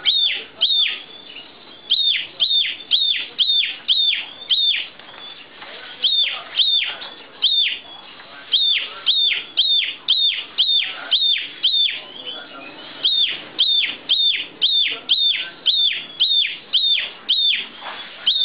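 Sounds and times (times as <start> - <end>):
Oriental magpie-robin whistling shrill notes: 0.0 - 18.4.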